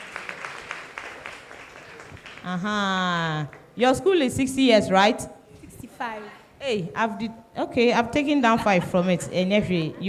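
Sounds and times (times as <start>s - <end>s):
crowd applause: 0.0s - 2.6s
speech: 2.4s - 5.4s, 6.0s - 10.0s.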